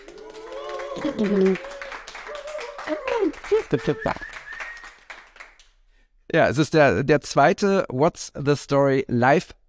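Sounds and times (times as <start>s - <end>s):
crowd clapping and cheering: 0.0s - 5.8s
speech: 1.0s - 1.8s, 2.9s - 4.3s, 6.3s - 9.6s.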